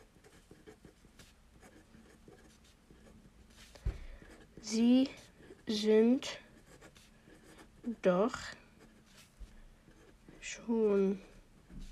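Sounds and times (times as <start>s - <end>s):
pen writing a letter by hand: 0.0s - 11.9s
soft bump: 3.8s - 4.1s
speech: 4.7s - 6.4s, 8.0s - 8.6s, 10.6s - 11.3s.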